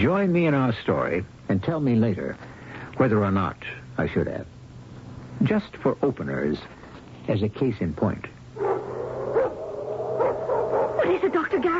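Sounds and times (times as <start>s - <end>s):
speech: 0.0s - 4.6s, 5.4s - 8.4s
steady low hum: 0.0s - 11.7s
several large Doberman pinschers barking and yipping: 8.6s - 11.7s.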